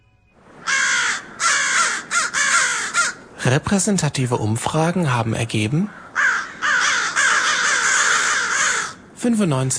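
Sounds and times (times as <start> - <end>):
crows cawing: 0.6 - 3.4, 5.8 - 9.2
speech: 3.4 - 6.0, 9.2 - 9.7.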